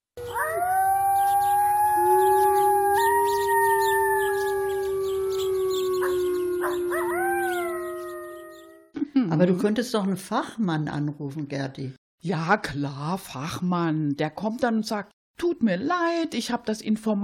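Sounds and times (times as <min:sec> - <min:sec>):
wolves howling in chorus: 0:00.2 - 0:08.9
speech: 0:09.4 - 0:17.2.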